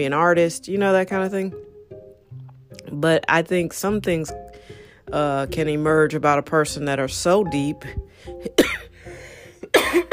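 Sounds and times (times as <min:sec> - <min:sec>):
speech: 0:00.0 - 0:01.7, 0:02.9 - 0:08.8
harsh coughs: 0:08.6 - 0:08.9, 0:09.7 - 0:10.1.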